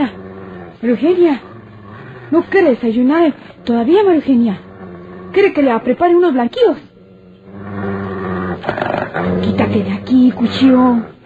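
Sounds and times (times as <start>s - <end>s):
dog growling by a door: 0.0s - 11.2s
speech: 0.8s - 1.5s, 2.3s - 4.6s, 5.3s - 6.9s, 9.3s - 11.2s.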